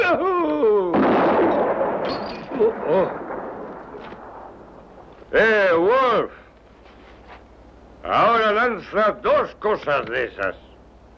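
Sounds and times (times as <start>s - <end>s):
gunshot from target shooting with rumble: 0.9s - 5.3s
speech: 2.6s - 3.2s, 5.3s - 6.4s, 8.0s - 10.7s.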